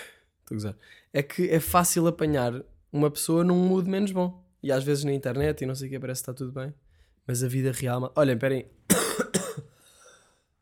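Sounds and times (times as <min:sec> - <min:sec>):
speech: 0:00.5 - 0:09.4
person coughing: 0:08.9 - 0:09.8.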